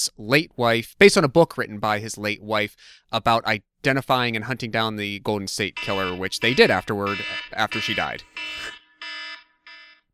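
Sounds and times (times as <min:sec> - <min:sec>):
speech: 0:00.0 - 0:08.8
electronic timer alarm beeping: 0:05.7 - 0:10.0.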